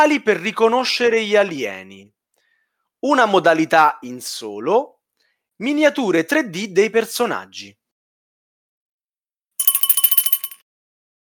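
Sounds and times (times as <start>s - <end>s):
speech: 0.0s - 2.2s, 3.0s - 5.0s, 5.6s - 7.8s
bright bell ringing rapidly: 9.6s - 10.6s.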